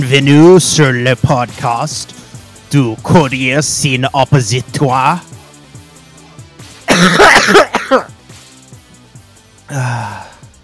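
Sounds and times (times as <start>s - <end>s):
speech: 0.0s - 5.3s, 7.0s - 8.1s, 9.7s - 10.3s
raspy throat-clearing: 6.9s - 8.1s
person coughing harshly: 6.9s - 8.2s.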